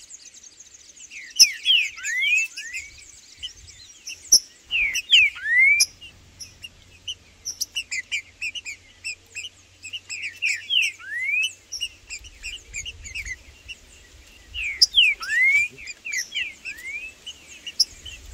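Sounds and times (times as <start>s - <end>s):
green-winged saltator soft rhythmic high chirps and clicks: 0.0s - 18.3s
green-winged saltator loud arched whistles: 1.2s - 3.0s, 4.1s - 6.7s, 9.8s - 13.4s, 14.6s - 18.3s.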